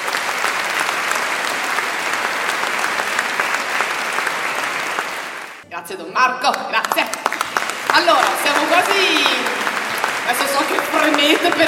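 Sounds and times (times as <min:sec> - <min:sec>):
audience applause at a choir festival: 0:00.0 - 0:05.6, 0:06.8 - 0:11.6
speech: 0:05.8 - 0:07.2, 0:07.9 - 0:09.6, 0:10.3 - 0:11.6.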